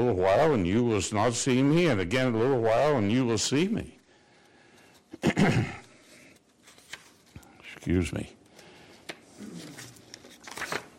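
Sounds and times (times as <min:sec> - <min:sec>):
speech: 0:00.0 - 0:04.0, 0:05.2 - 0:05.8, 0:07.8 - 0:08.4
paper sheets cut with a paper cutter being separated: 0:06.0 - 0:07.4, 0:09.4 - 0:10.9.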